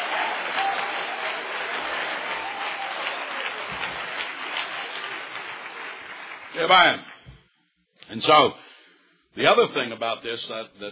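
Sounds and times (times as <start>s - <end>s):
audience clapping hands in praise: 0.0s - 7.4s
speech: 6.6s - 7.1s, 8.1s - 8.6s, 9.4s - 10.9s.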